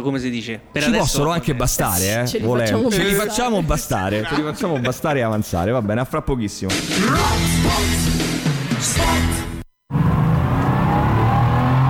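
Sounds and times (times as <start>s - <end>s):
speech: 0.0s - 8.2s
laughter: 0.7s - 6.9s
car engine revving: 6.8s - 11.8s.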